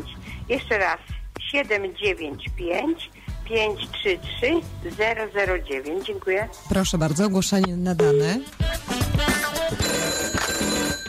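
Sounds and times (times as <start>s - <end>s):
speech: 0.5s - 10.2s
bright electronic telephone ring of an incoming call on a call-in line: 9.8s - 11.0s.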